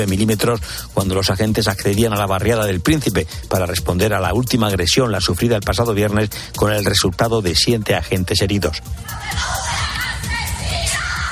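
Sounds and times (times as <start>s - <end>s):
speech: 0.0s - 9.6s
relatives of a murdered soldier shouting and crying out in Ceuta: 8.9s - 11.2s.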